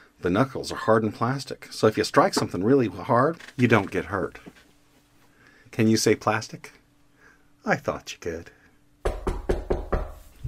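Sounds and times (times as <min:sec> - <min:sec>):
speech: 0:00.2 - 0:04.6, 0:05.7 - 0:06.8, 0:07.6 - 0:08.6
firm knocking on a door: 0:09.0 - 0:10.4.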